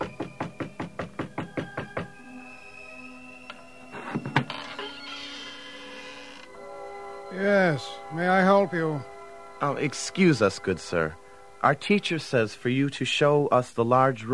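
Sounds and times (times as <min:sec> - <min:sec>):
sharp knocks on a wooden door: 0:00.0 - 0:02.2
speech: 0:07.4 - 0:14.3.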